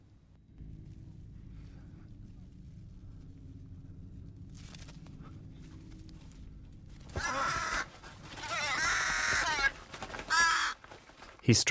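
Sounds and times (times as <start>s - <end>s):
steady low rumble: 0.0s - 10.3s
loud harsh crow caws: 7.0s - 11.1s
speech: 11.5s - 11.6s.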